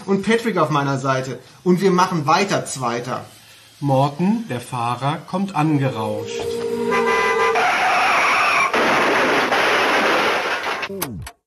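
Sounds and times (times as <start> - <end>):
speech: 0.0 - 7.2
car tires screeching under braking: 6.3 - 10.9
car crash with harsh sustained clatter: 7.6 - 10.9.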